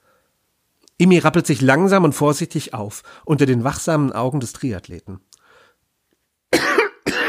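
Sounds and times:
speech: 0:01.0 - 0:05.3
harsh coughs: 0:06.5 - 0:07.2.

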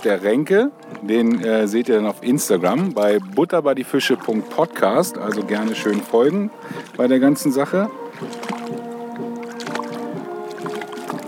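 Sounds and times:
speech: 0:00.0 - 0:08.4
water splashing as a whitefish is hauled aboard a boat: 0:00.0 - 0:11.2
knocks on a boat: 0:08.1 - 0:11.2.

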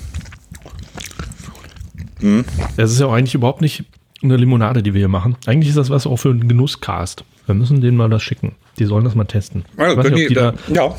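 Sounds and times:
chewing a berry: 0:00.0 - 0:05.6
speech: 0:02.2 - 0:10.9.

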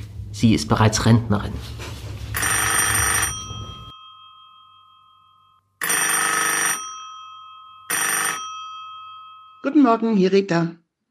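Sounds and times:
speech: 0:00.4 - 0:01.9, 0:09.6 - 0:10.8
telephone ringing: 0:02.4 - 0:10.0.

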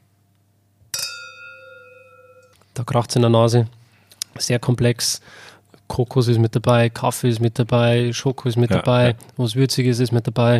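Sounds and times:
glasses clinking in a toast: 0:00.9 - 0:02.6
speech: 0:02.8 - 0:03.8, 0:04.4 - 0:10.5.

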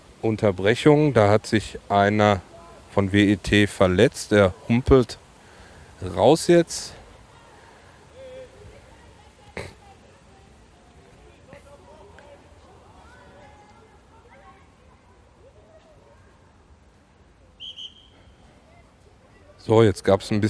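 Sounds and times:
outdoor background of voices: 0:00.0 - 0:20.4
speech: 0:00.2 - 0:05.2, 0:06.0 - 0:07.0, 0:19.7 - 0:20.4
referee's whistle blown during youth football match: 0:17.6 - 0:18.4.

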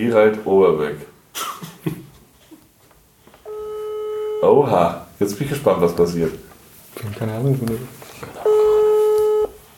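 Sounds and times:
speech: 0:00.0 - 0:01.1, 0:04.4 - 0:06.4, 0:07.0 - 0:08.6
quiet phone line noise: 0:02.8 - 0:09.7
ringback tone from an outgoing phone call: 0:03.4 - 0:04.6, 0:08.4 - 0:09.6.

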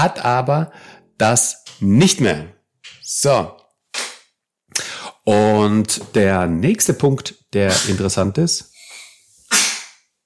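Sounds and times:
speech: 0:00.0 - 0:03.6, 0:04.7 - 0:08.7
sneeze: 0:07.7 - 0:08.1, 0:09.0 - 0:10.0.

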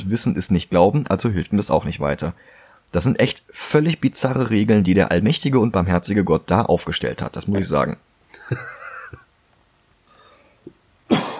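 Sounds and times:
speech: 0:00.0 - 0:08.8
strained wheezy breaths: 0:02.4 - 0:02.9, 0:10.1 - 0:10.6
person coughing with rough raspy coughs: 0:11.1 - 0:11.3.

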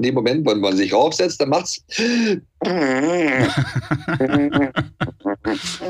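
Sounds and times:
speech: 0:00.0 - 0:05.8
mouth fart imitation: 0:02.6 - 0:05.8
person giggling: 0:03.4 - 0:05.8.

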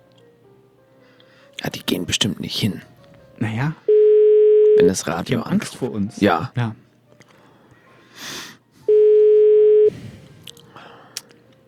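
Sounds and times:
speech: 0:01.6 - 0:03.8, 0:04.8 - 0:06.8
telephone ringing tone: 0:03.9 - 0:05.0, 0:08.9 - 0:09.9.

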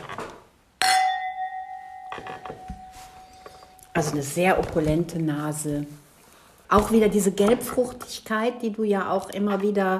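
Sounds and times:
wine glasses clinking together in a toast: 0:00.8 - 0:03.4
speech: 0:02.2 - 0:03.1, 0:04.0 - 0:06.0, 0:06.7 - 0:09.9.

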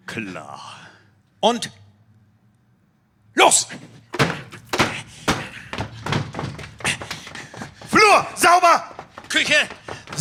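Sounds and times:
speech: 0:00.2 - 0:01.8, 0:03.4 - 0:04.4, 0:08.1 - 0:10.1
door being pushed open forcefully: 0:04.1 - 0:10.1.

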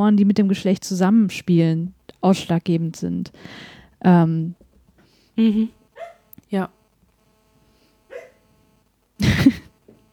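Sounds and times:
speech: 0:00.0 - 0:04.6, 0:05.4 - 0:05.8, 0:06.5 - 0:06.8
dreaming female dog barking in her sleep: 0:06.0 - 0:06.3, 0:08.1 - 0:08.5.

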